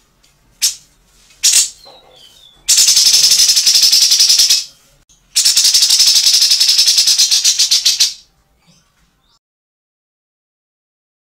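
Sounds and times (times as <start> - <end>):
grey-cheeked bulbul rattling call: 1.4 - 4.7, 5.4 - 8.2.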